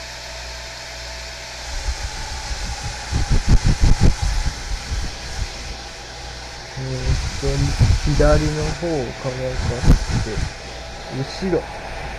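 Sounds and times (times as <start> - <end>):
faint whining hum: 0.0 - 12.1
hair dryer blowing: 0.0 - 12.1
speech: 6.9 - 11.8.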